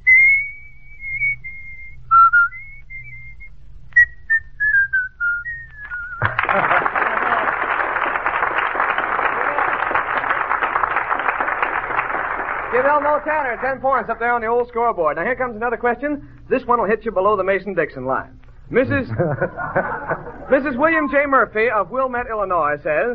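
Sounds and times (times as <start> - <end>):
person whistling the melody of a popular song: 0.0 - 6.4
loud sustained applause: 5.8 - 13.7
laughter: 6.2 - 8.4, 18.9 - 21.1
speech: 12.8 - 23.1.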